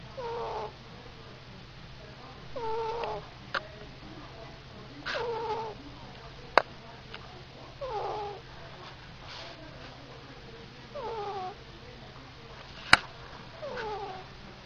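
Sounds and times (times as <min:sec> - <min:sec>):
ferret: 0:00.0 - 0:00.8, 0:02.5 - 0:03.3, 0:05.0 - 0:05.8, 0:07.8 - 0:08.5, 0:10.9 - 0:11.6, 0:12.7 - 0:14.3.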